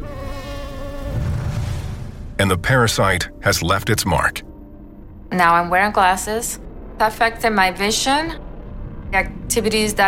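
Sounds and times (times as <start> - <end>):
mosquito whine: 0.0 - 1.4
low rumble: 1.2 - 10.0
speech: 2.4 - 4.5, 5.3 - 8.4, 9.1 - 10.0.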